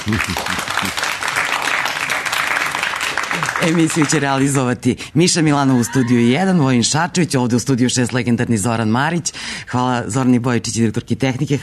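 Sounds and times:
studio audience applause: 0.0 - 4.6
speech: 0.1 - 1.1, 3.6 - 11.6.

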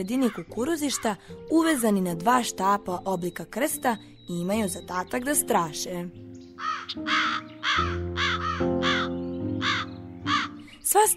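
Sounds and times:
speech: 0.0 - 8.0, 10.9 - 11.1
crows cawing around a cornfield guarded by scarecrows: 0.1 - 1.3, 6.6 - 10.6.

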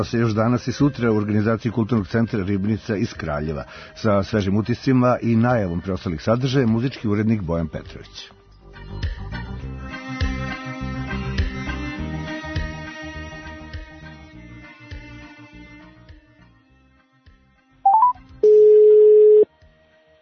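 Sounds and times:
speech: 0.0 - 9.5
music: 0.0 - 20.1
loud steady electronic phone line ringing tone: 17.9 - 19.4
quick phone dialing beeps: 17.9 - 19.4.

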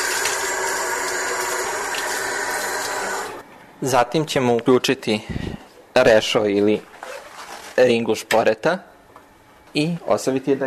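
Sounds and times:
tap water running over jewelry being rinsed: 0.0 - 3.4
speech: 3.8 - 6.9, 7.8 - 8.9, 9.7 - 10.6.

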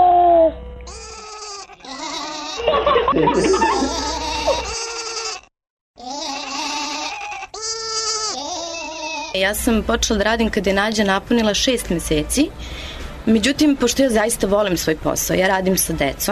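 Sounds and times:
voice imitating sheep bleating: 0.9 - 2.6, 3.2 - 9.4
giggly breathy laughter: 1.7 - 5.4
speech: 3.1 - 4.7, 9.4 - 16.2.

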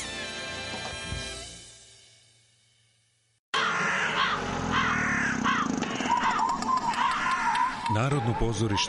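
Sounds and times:
music: 0.0 - 3.2
flock of crows cawing: 3.6 - 8.8
speech: 7.9 - 8.8.

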